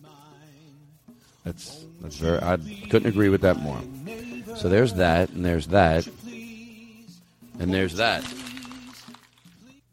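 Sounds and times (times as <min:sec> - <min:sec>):
speech: 0:01.4 - 0:06.2, 0:07.6 - 0:08.4
paper rustling and crinkling: 0:07.9 - 0:09.6.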